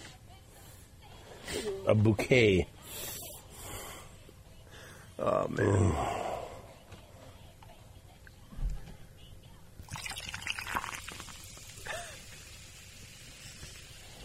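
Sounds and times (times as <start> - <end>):
speech: 1.8 - 3.1, 5.2 - 6.2
Diet Dr. Pepper soda pouring: 9.8 - 14.2.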